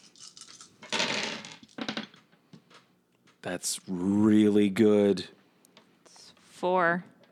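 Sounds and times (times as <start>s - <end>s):
handful of dice clattering and rattling across a hard surface: 0.0s - 2.9s
speech: 3.4s - 5.4s, 6.6s - 7.2s.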